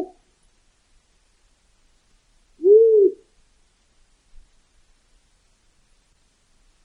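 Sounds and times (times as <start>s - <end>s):
bird hooting note in Alaska: 2.6s - 3.3s.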